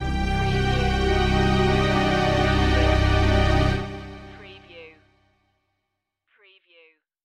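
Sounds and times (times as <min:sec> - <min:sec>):
string stab: 0:00.0 - 0:04.7.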